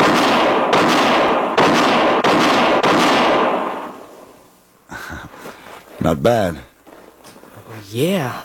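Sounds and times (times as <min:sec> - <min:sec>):
pistol shots in a quick-draw shooting test: 0:00.0 - 0:04.3
speech: 0:06.1 - 0:06.7, 0:07.9 - 0:08.4.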